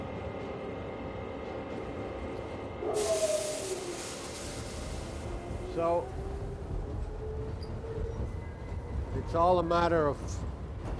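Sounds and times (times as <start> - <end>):
steady low rumble inside a moving train carriage: 0.0 - 10.9
burst of hissing air in a train carriage: 2.9 - 5.6
speech: 5.8 - 6.3, 9.3 - 10.5.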